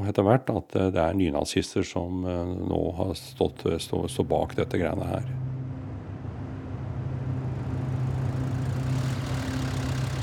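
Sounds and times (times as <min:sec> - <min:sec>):
speech: 0:00.0 - 0:05.4
car engine idling: 0:02.5 - 0:10.2.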